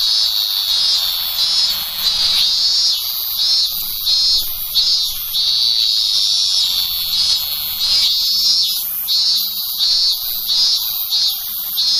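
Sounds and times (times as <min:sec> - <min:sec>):
robust cicada song: 0:00.0 - 0:11.9.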